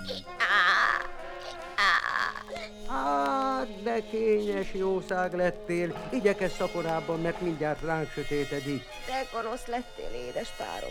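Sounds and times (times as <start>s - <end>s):
donkey braying: 0.0s - 3.4s
speech: 4.0s - 10.8s.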